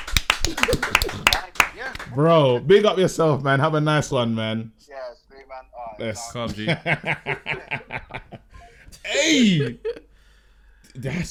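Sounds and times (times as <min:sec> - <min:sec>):
small group clapping in applause: 0:00.0 - 0:02.2
laughter: 0:00.4 - 0:01.6, 0:06.2 - 0:10.1
speech: 0:00.5 - 0:08.2, 0:09.0 - 0:10.0, 0:11.0 - 0:11.2.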